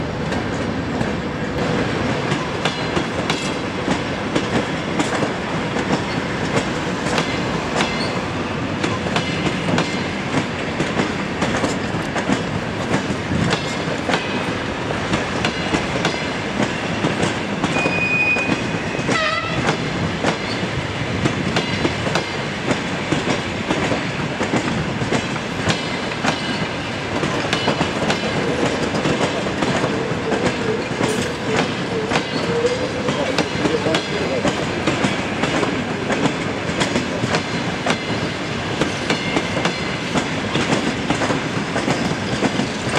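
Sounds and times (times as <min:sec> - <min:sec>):
train passing railway station: 0:00.0 - 0:42.9.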